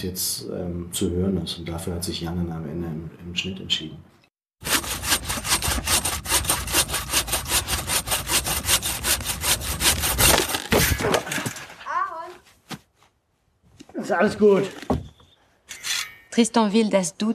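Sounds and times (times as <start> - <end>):
speech: 0.0 - 4.7, 14.1 - 14.8, 16.4 - 17.3
saw cutting through wood: 4.6 - 10.7
saw breaking with sharp cracks: 9.8 - 11.8.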